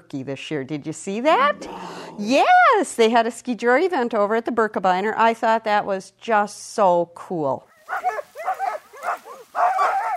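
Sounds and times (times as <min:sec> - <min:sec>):
speech: 0:00.1 - 0:08.6
crowd of kennel dogs yipping, whining and barking on rural land: 0:07.7 - 0:10.1.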